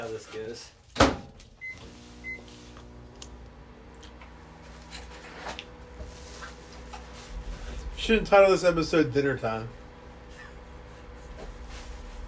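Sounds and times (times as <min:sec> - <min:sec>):
speech: 0:00.1 - 0:01.2, 0:08.0 - 0:09.8
microwave oven motor hum with whirring drone: 0:01.0 - 0:12.2
short electronic beeps from a microwave oven: 0:01.6 - 0:02.5.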